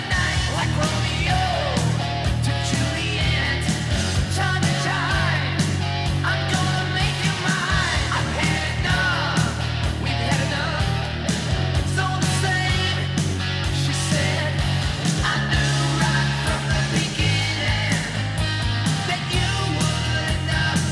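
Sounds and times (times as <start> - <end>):
Squier Affinity Bronco bass guitar playing metal: 0.0 - 20.9.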